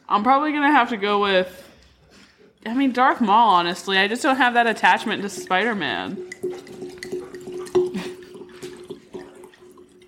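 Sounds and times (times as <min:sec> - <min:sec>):
speech: 0:00.1 - 0:01.7, 0:02.6 - 0:06.8
liquid pouring heavily into a container: 0:03.8 - 0:10.0.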